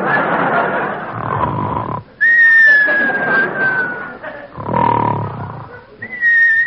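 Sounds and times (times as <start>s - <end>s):
laughter: 0.0s - 1.6s, 2.2s - 6.3s
sleeping man snoring with raspy breaths: 1.1s - 2.1s, 4.5s - 5.8s
long steady high whistles from a sleeping man: 2.2s - 4.1s, 6.0s - 6.6s.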